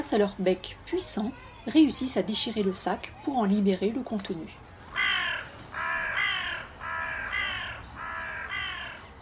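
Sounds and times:
speech: 0:00.0 - 0:04.8
carrion crows cawing: 0:04.9 - 0:09.1.

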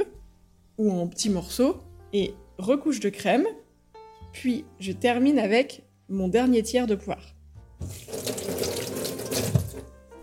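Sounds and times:
speech: 0:00.8 - 0:03.6, 0:04.3 - 0:08.0
tap water running as hands are rinsed: 0:07.8 - 0:10.2.

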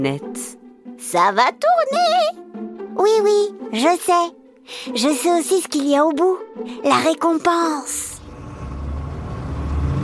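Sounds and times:
speech: 0:00.0 - 0:02.4, 0:03.0 - 0:08.1
car engine droning while driving uphill: 0:08.2 - 0:10.0.

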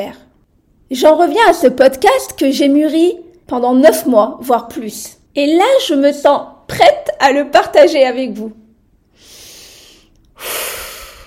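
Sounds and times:
speech: 0:00.0 - 0:00.3, 0:00.9 - 0:08.6
deep breath: 0:09.1 - 0:11.2.

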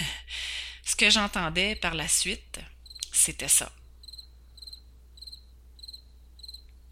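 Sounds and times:
speech: 0:01.0 - 0:03.8
cricket chirping in steady bursts: 0:02.8 - 0:03.1, 0:03.8 - 0:06.9.

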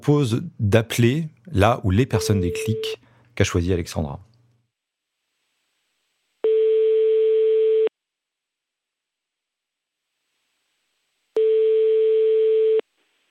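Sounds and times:
speech: 0:00.0 - 0:04.3
telephone ringback tone: 0:06.4 - 0:07.9, 0:11.4 - 0:12.8.

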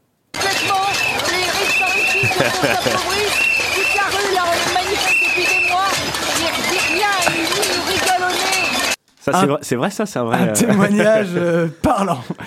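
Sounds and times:
man blowing loudly on a whistle: 0:00.4 - 0:07.5
people shouting at a pots-and-pans protest: 0:00.4 - 0:09.0
clattering pots and pans noise: 0:00.4 - 0:09.2
dense chaotic street crowd at a pots-and-pans protest: 0:00.4 - 0:09.5, 0:10.4 - 0:11.7
laughter: 0:01.2 - 0:08.8, 0:10.3 - 0:12.4
speech: 0:02.4 - 0:03.4, 0:09.3 - 0:12.4.

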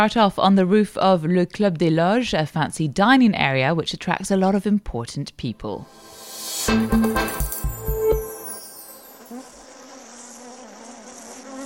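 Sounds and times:
speech: 0:00.0 - 0:07.4
bees buzzing around rooftop beehives: 0:08.8 - 0:11.6.

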